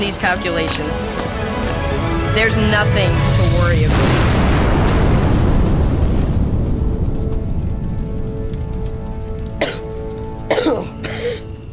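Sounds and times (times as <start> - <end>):
speech: 0.0 - 1.5, 2.3 - 4.3
falling debris crackling: 0.6 - 11.7
explosion blasting a hole after a burning fuse: 2.3 - 9.7.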